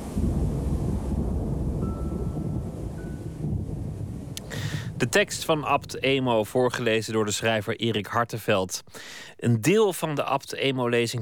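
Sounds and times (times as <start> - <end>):
wind-like roar: 0.0 - 6.5
brief sharp crackle: 0.0 - 7.6
deep continuous rumble of thunder: 0.0 - 9.0
speech: 5.0 - 11.2.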